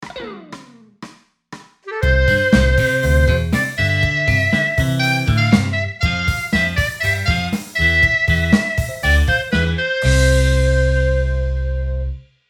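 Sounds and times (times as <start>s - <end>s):
upbeat celebratory band music for a sitcom: 0.0s - 12.2s.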